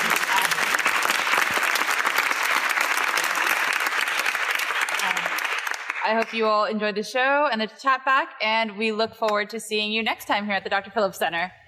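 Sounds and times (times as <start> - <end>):
sizable audience applauding: 0.0 - 6.4
speech: 6.1 - 11.6.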